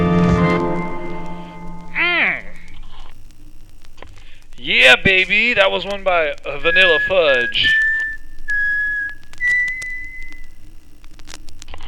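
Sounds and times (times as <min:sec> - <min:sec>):
noise: 0:00.0 - 0:11.8
faint clicks: 0:01.2 - 0:11.8
speech: 0:04.7 - 0:07.8
person whistling a short melodic tune: 0:06.7 - 0:10.4.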